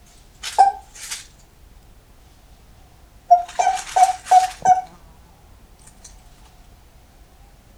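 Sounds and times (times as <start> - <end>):
Japanese common toad calling: 0.5 - 1.0, 3.3 - 5.0.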